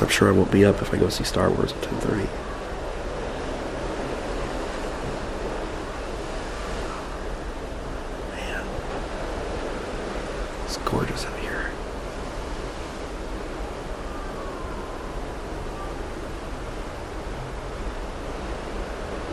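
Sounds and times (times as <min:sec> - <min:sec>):
ocean waves rushing: 0:00.0 - 0:19.3
speech: 0:00.1 - 0:02.5.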